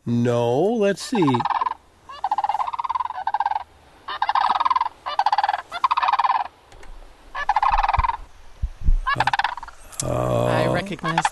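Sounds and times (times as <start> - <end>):
speech: 0.0 - 1.6
sandhill crane rolling rattling bugle calls: 1.1 - 6.6, 7.4 - 8.2, 9.1 - 9.8, 10.4 - 11.3
low thumps: 7.8 - 9.1.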